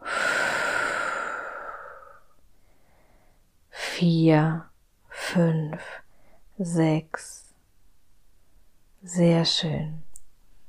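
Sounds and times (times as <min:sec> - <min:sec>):
slow exhale during a guided breathing exercise: 0:00.0 - 0:03.4
speech: 0:04.0 - 0:04.7, 0:05.3 - 0:06.0, 0:06.6 - 0:07.4, 0:09.0 - 0:10.1.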